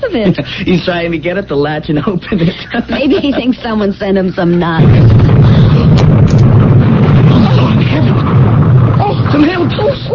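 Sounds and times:
speech: 0.1 - 6.4
laughter: 2.1 - 4.1
bomb exploding in a mailbox: 3.0 - 10.1.

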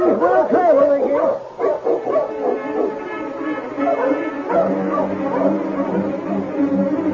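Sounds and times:
team of sled dogs barking and yipping excitedly: 0.2 - 7.0
sled dogs whimpering: 1.2 - 3.1, 3.7 - 6.6.

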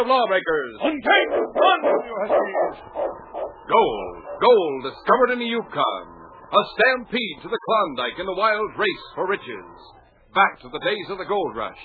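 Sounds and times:
speech: 0.0 - 11.8
lead sled dog barking: 0.8 - 4.5.

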